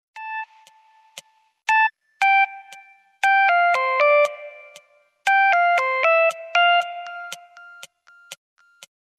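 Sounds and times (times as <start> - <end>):
electronic ringtone or bell chime: 1.7 - 8.9.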